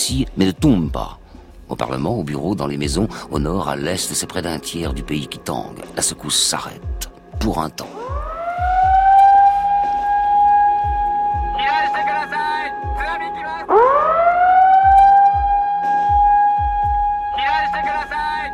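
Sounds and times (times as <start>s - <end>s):
speech: 0.1s - 8.1s
Japanese tsunami warning siren wailing after an earthquake: 7.9s - 18.5s
voice of a loudspeaker announcement: 11.5s - 13.9s, 17.3s - 18.5s.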